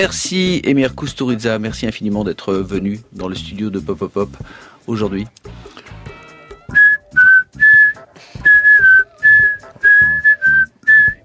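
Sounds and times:
speech: 0.0s - 5.9s
person whistling a short bright tune: 6.7s - 11.2s.

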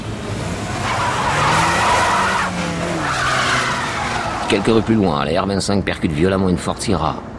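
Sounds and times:
car tires screeching as the vehicle accelerates hard: 0.0s - 5.6s
car engine roaring: 0.0s - 7.3s
speech: 4.5s - 7.3s.

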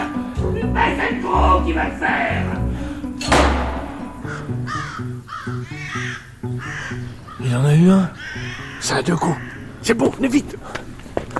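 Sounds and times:
speech: 0.8s - 2.6s, 4.3s - 10.9s
sharp thud: 3.2s - 4.4s
crows cawing: 3.8s - 10.9s.

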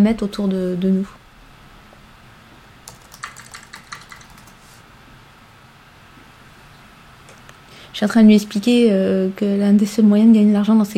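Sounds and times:
speech: 0.0s - 1.2s, 8.0s - 10.9s
typing on a computer keyboard in a text chat: 2.8s - 4.6s.

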